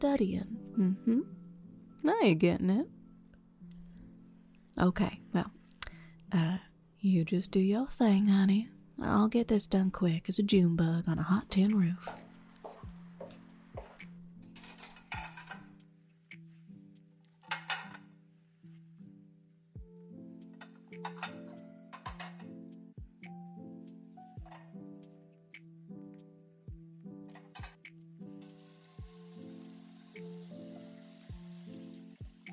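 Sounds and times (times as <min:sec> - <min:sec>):
speech: 0:00.0 - 0:01.4, 0:02.0 - 0:03.0, 0:04.8 - 0:05.6, 0:06.3 - 0:12.2
steady music: 0:00.0 - 0:32.5
plates and cutlery clinking: 0:13.8 - 0:15.8, 0:17.4 - 0:18.1, 0:20.6 - 0:22.6, 0:27.3 - 0:27.8
running water while washing dishes: 0:28.4 - 0:32.5.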